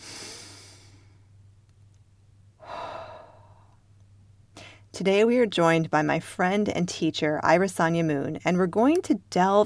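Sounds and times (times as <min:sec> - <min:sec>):
deep breaths: 0:00.0 - 0:01.3, 0:02.6 - 0:03.8, 0:04.6 - 0:04.9
speech: 0:05.0 - 0:09.6.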